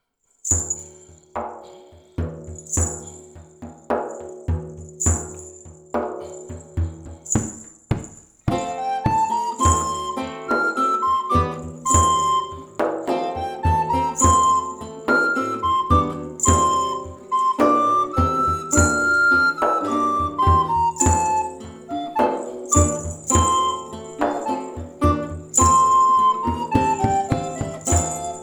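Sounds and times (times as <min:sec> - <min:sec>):
drums: 0:00.5 - 0:28.4
flute: 0:08.5 - 0:28.4
lute: 0:08.5 - 0:28.4.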